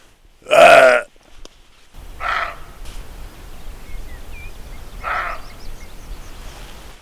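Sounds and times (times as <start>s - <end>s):
roe deer giving a harsh hoarse barking cry: 2.0s - 3.0s, 3.9s - 6.0s
faint birdsong: 2.0s - 6.9s
low outdoor hum: 2.0s - 6.9s.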